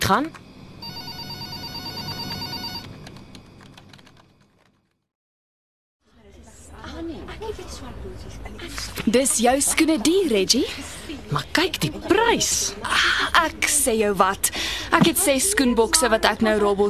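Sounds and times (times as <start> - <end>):
speech: 0.1 - 0.4, 7.8 - 16.8
telephone ringing with a steady electronic trill: 0.8 - 4.4.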